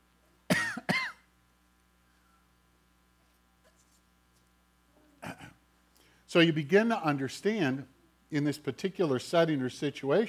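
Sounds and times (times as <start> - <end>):
faint hum: 0.0 - 10.2
person clearing a dry throat: 0.5 - 1.3, 5.2 - 5.6
speech: 6.3 - 10.2.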